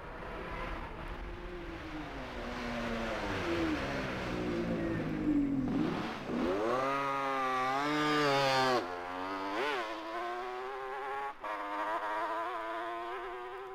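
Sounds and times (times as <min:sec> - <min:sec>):
BSA motorcycle engine at a hairpin bend in a road race: 0:00.3 - 0:13.7.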